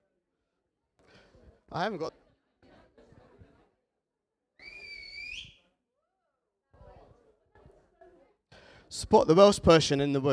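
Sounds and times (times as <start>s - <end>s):
murmur of many people chatting: 1.0s - 10.3s
speech: 1.7s - 2.2s, 8.9s - 10.3s
loud piercing whistle to quiet a room: 4.6s - 5.6s.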